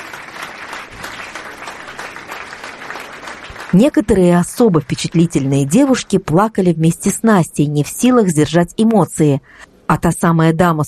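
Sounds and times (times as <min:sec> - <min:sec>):
audience applauding: 0:00.0 - 0:06.3
speech: 0:03.7 - 0:10.8.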